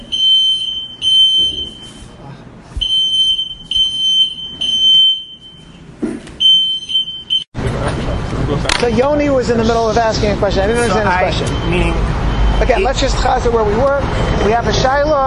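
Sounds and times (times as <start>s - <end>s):
shrill electronic alarm beeping: 0.0s - 2.2s, 2.8s - 5.8s, 6.4s - 7.5s, 10.9s - 13.1s
room noise: 0.0s - 15.2s
voices: 7.6s - 15.2s
speech: 8.8s - 15.2s.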